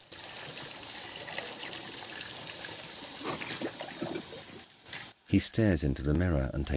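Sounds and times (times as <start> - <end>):
water splashing and sloshing at a sink: 0.5 - 5.2
man rinsing his mouth with water: 0.6 - 5.1
speech: 5.3 - 6.7.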